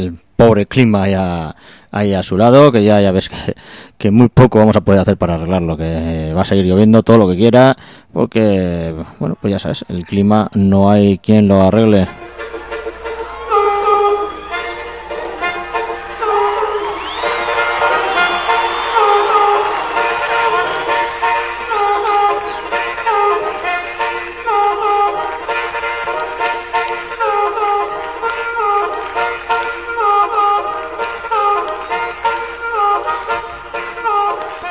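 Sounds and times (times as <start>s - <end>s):
speech: 0.0s - 12.3s
blues band song intro with chugging train-like rhythm: 12.2s - 34.6s.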